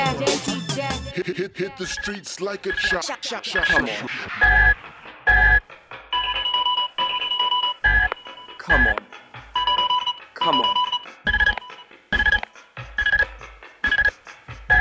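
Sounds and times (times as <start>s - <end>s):
person talking impatiently: 0.0s - 4.0s
speech: 1.2s - 4.9s, 10.4s - 10.8s
telephone ringing in short electronic bursts: 4.4s - 9.0s, 9.6s - 14.7s.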